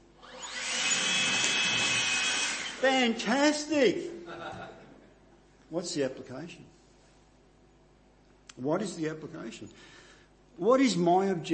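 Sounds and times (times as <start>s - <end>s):
leaf blower running: 0.2s - 2.9s
speech: 2.8s - 4.1s, 5.7s - 6.8s, 8.6s - 10.0s, 10.6s - 11.5s
laughter: 4.2s - 5.2s.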